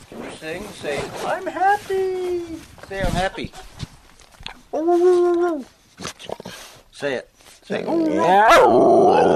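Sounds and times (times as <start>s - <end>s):
speech: 0.4s - 3.8s, 4.7s - 5.8s, 7.0s - 9.3s
dog giving a bright howl-like vocalization: 7.9s - 9.3s.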